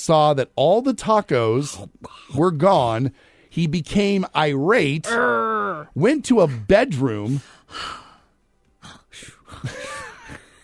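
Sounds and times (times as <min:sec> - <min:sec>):
speech: 0:00.0 - 0:08.0
person imitating snoring: 0:05.0 - 0:05.9.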